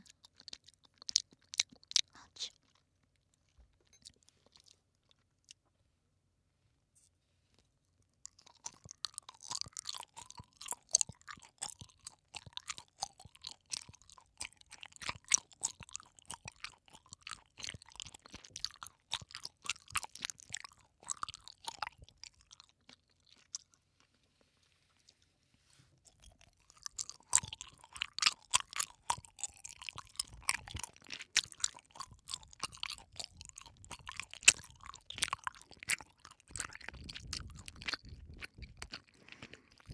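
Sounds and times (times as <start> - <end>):
chewing soft pineapple-flavored gummy candy: 0.0 - 5.8, 7.0 - 39.9.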